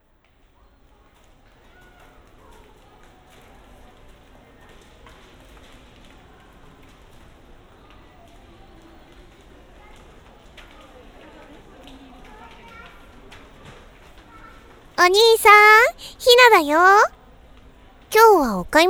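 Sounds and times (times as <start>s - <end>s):
indistinct voices: 15.0s - 17.1s, 18.2s - 18.8s
shopping mall ambience beside an escalator: 15.0s - 17.1s, 18.1s - 18.8s
speech: 15.0s - 17.2s, 18.1s - 18.8s.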